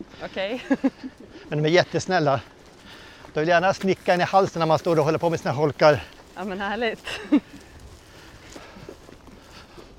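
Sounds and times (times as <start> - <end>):
speech: 0.0 - 2.6, 3.4 - 7.6
laughter: 0.5 - 1.6, 7.0 - 7.6
cattle hoof thuds on grass in a pasture: 2.4 - 9.9.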